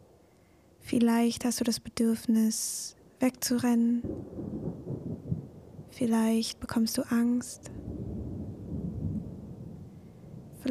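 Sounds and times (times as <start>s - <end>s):
faint storm hiss: 0.0s - 10.6s
speech: 0.9s - 4.5s, 6.0s - 7.7s
rolling thunder: 4.0s - 6.1s, 7.6s - 10.6s.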